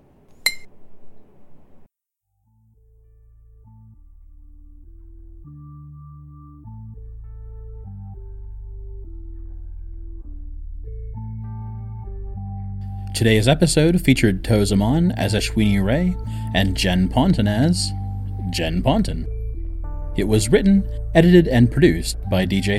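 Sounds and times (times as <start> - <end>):
bright glass clink: 0.5 - 0.7
mellow instrumental music: 2.8 - 22.7
speech: 13.2 - 19.4, 20.2 - 22.7.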